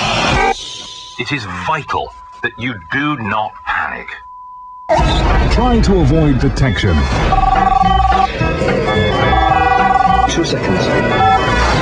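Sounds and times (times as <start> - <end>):
speech: 1.2 - 4.2, 4.9 - 9.1, 10.3 - 11.5
cell phone ringtone: 7.3 - 8.3, 8.9 - 10.5, 11.1 - 11.8.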